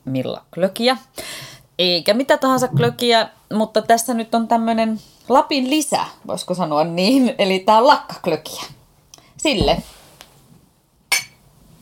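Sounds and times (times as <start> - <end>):
speech: 0.1 - 8.8, 9.4 - 10.0
two glasses clinking in a toast: 11.1 - 11.4.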